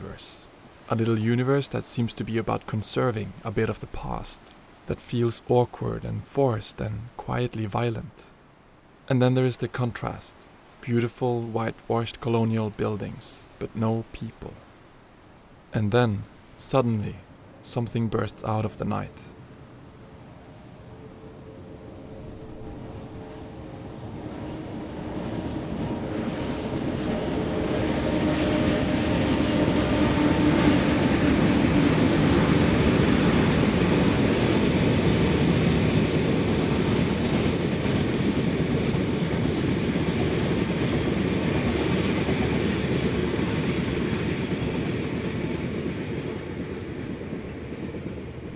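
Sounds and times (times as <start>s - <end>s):
speech: 0.2s - 8.3s, 9.1s - 14.6s, 15.7s - 19.3s
train passing through town without slowing: 17.1s - 48.5s
rhythmic rail clatter: 25.7s - 48.5s.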